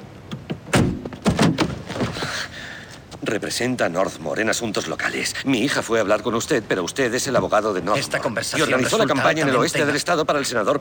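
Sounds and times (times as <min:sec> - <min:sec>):
car door being unlatched and swung open: 0:00.3 - 0:02.2
speech: 0:03.3 - 0:10.7.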